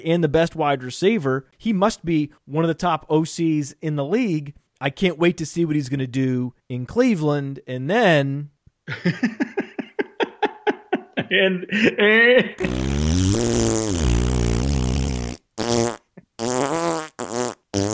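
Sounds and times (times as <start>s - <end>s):
speech: 0.0s - 9.6s, 11.3s - 12.9s
laughter: 8.9s - 12.8s
generic fart sound effect: 12.6s - 17.9s.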